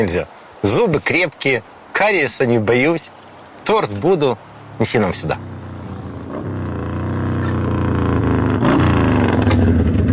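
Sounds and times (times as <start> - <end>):
speech: 0.0 - 5.5
motorcycle engine pulling up across a yard: 3.2 - 10.1.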